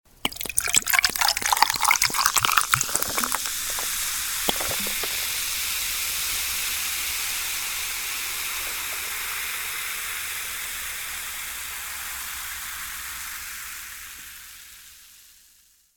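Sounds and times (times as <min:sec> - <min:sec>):
champagne pouring: 0:00.1 - 0:11.2.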